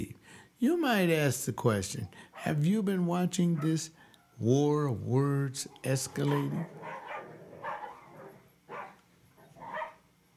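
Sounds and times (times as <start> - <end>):
speech: 0.0 - 7.0
dog barking at the dog next door: 2.4 - 2.6, 3.6 - 3.8, 6.1 - 10.0.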